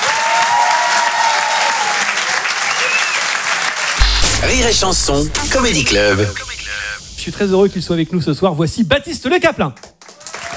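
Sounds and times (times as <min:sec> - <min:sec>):
audience applause at a comedy club show: 0:00.0 - 0:04.0, 0:10.0 - 0:10.5
people cheering: 0:00.0 - 0:08.1, 0:10.0 - 0:10.5
speech: 0:04.4 - 0:06.5, 0:07.2 - 0:09.9.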